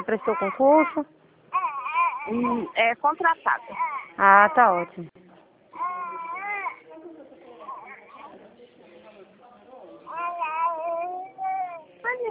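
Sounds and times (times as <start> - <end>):
speech: 0.0 - 1.2, 2.3 - 5.2
baby babbling: 0.0 - 2.8, 3.6 - 4.9, 5.8 - 7.0, 10.1 - 12.2.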